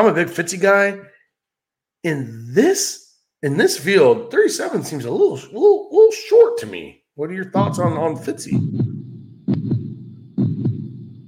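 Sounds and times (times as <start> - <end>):
speech: 0.0 - 1.1, 2.0 - 8.9
heartbeat sound effect thumping: 7.5 - 11.2.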